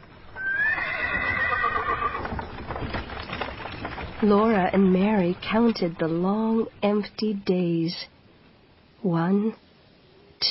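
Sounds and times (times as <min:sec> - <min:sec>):
hooves of horses drawing a wagon clip-clopping: 0:00.0 - 0:07.2
horse whinnying: 0:00.4 - 0:02.4
speech: 0:04.2 - 0:08.1, 0:09.0 - 0:09.6.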